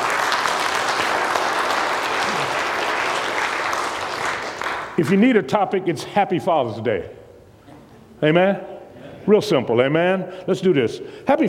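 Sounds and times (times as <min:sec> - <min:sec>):
congregation clapping hands: 0:00.0 - 0:05.2
speech: 0:05.0 - 0:07.2, 0:08.2 - 0:11.4.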